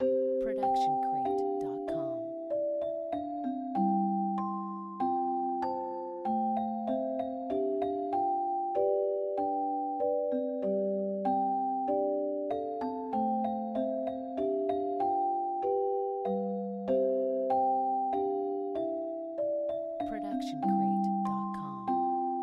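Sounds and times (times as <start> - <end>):
celesta lullaby: 0.0 - 22.4.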